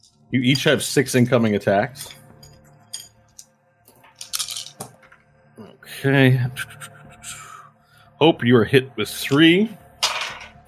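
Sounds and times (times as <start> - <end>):
speech: 0.3 - 2.2, 6.0 - 6.9, 8.2 - 9.8
several dice clattering across a hard surface: 4.2 - 4.9.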